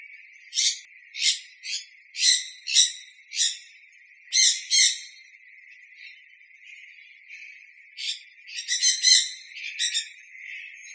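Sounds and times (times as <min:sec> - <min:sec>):
sun conure screeching: 0:00.6 - 0:03.6, 0:04.4 - 0:05.1, 0:08.0 - 0:10.1.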